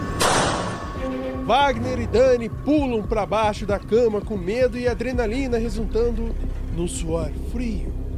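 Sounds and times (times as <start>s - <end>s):
single sharp gunshot: 0.2s - 1.0s
speech: 1.5s - 8.0s.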